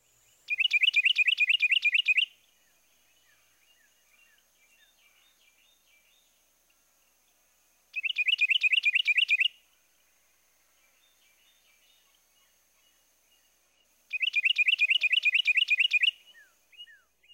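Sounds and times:
faint chirps: 0:00.0 - 0:17.3
Carolina wren loud rolling two-noted song: 0:00.4 - 0:06.4, 0:07.2 - 0:09.6, 0:10.7 - 0:17.3.

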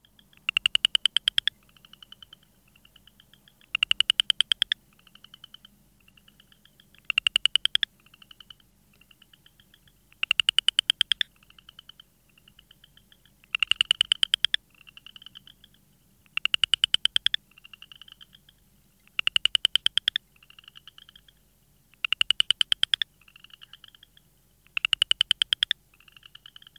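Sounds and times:
southern chorus frog calling with rising pulsed trill: 0:00.1 - 0:21.4, 0:22.0 - 0:26.7.

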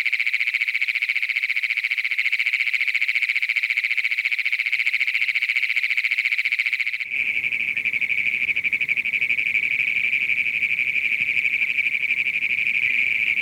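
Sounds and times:
Great Plains toad calling in a high metallic trill: 0:00.0 - 0:13.3.

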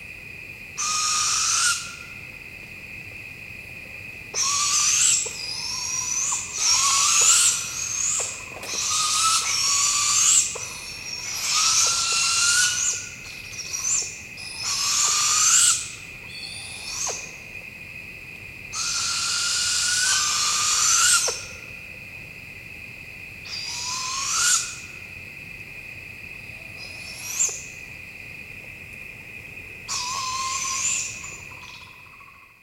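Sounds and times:
steady hiss: 0:00.0 - 0:32.6
young barred owls giving harsh rising begging screeches: 0:00.8 - 0:02.0, 0:04.4 - 0:17.2, 0:18.8 - 0:21.4, 0:23.5 - 0:24.8, 0:29.9 - 0:31.8.

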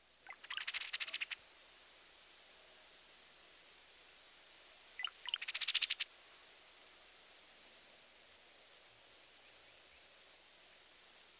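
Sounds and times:
Brown-headed Cowbird sputtering chatter in flight: 0:00.3 - 0:01.4, 0:05.0 - 0:06.0.

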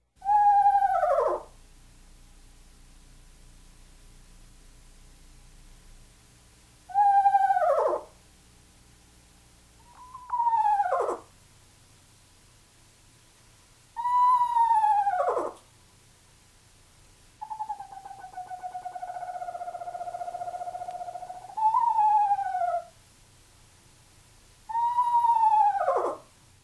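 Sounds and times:
eastern screech owl descending whinnying whistles: 0:00.2 - 0:01.5, 0:06.9 - 0:08.1, 0:09.8 - 0:11.3, 0:14.0 - 0:15.6, 0:17.4 - 0:22.9, 0:24.7 - 0:26.3.

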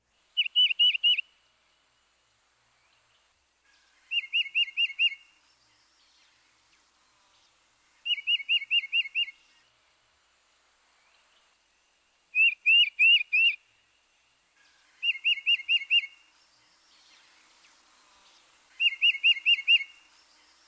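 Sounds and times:
bird whistling a two-noted song: 0:00.4 - 0:01.3, 0:04.1 - 0:05.3, 0:08.0 - 0:09.4, 0:12.3 - 0:13.6, 0:15.0 - 0:16.2, 0:18.8 - 0:20.1.

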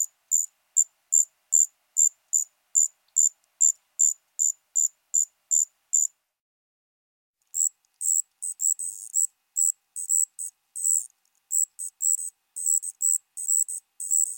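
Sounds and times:
striped ground cricket Allonemobius fasciatus trilling: 0:00.3 - 0:06.1, 0:07.6 - 0:14.3.

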